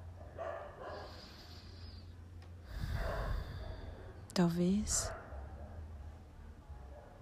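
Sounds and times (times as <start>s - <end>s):
dogs barking in the neighborhood: 0.0s - 1.7s, 2.8s - 4.2s, 5.0s - 5.9s
low rumble: 0.0s - 7.1s
speech: 4.4s - 5.2s.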